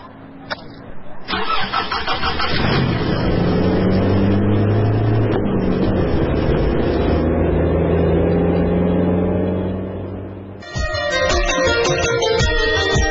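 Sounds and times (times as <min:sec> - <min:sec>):
car engine starting with sharp clicks: 0:00.1 - 0:13.0
car engine running with a loud mid-pitched hum: 0:03.2 - 0:10.6.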